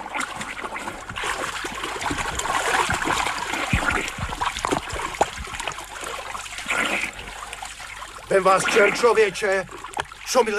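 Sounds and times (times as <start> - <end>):
water splashing from someone swimming through a river: 0.0 - 10.5
speech: 8.3 - 10.5.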